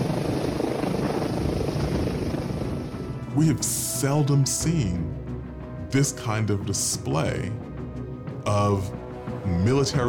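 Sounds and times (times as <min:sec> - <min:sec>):
military helicopter rotor thrum flying low overhead above protesters in the United States: 0:00.0 - 0:03.3
military helicopter engine rumble: 0:00.0 - 0:03.9
speech: 0:03.4 - 0:05.2, 0:05.9 - 0:07.7, 0:08.4 - 0:10.0.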